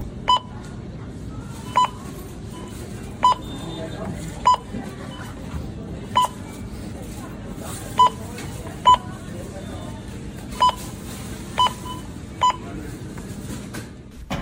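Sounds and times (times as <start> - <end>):
cleaning machine electronic beeps: 0.2 - 0.6, 1.6 - 5.4, 6.1 - 6.6, 8.0 - 8.2, 8.8 - 9.9, 10.5 - 10.9, 11.6 - 12.7.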